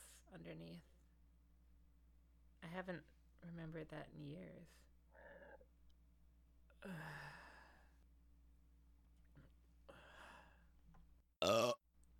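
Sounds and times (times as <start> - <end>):
speech: 0.3 - 0.9, 2.7 - 5.4, 6.8 - 7.4
burp: 11.4 - 11.8.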